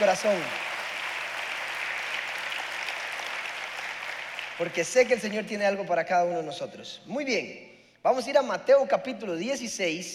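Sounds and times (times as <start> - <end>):
speech: 0.0 - 0.7, 4.6 - 10.1
crowd applauding: 0.0 - 5.4.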